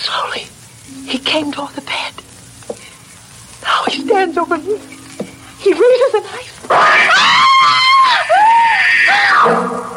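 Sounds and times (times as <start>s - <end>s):
speech: 1.1s - 2.2s, 3.9s - 4.9s, 5.6s - 7.6s
woman screaming in terror: 6.8s - 9.5s.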